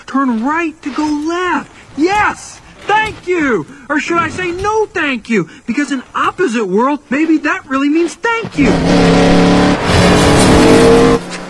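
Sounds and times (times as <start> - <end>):
speech: 0.1 - 10.0
car engine revving: 8.4 - 11.4.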